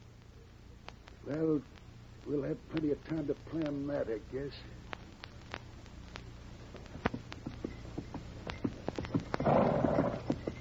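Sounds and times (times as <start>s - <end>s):
speech: 1.3s - 4.8s
horse hooves clip-clopping on a trail: 4.9s - 10.5s.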